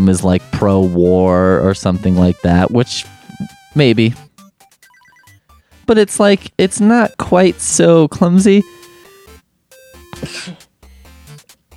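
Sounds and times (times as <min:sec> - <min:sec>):
speech: 0:00.0 - 0:04.2, 0:05.9 - 0:08.8, 0:10.2 - 0:10.6
person sneezing: 0:10.2 - 0:10.6.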